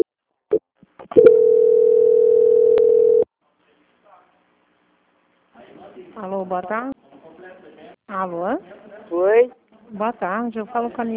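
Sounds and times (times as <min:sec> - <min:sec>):
steady mid-pitched telephone tone during a call transfer: 0:01.2 - 0:03.3
faint clicks during a telephone call transfer: 0:02.7 - 0:03.0
speech: 0:06.5 - 0:07.0, 0:10.1 - 0:11.1.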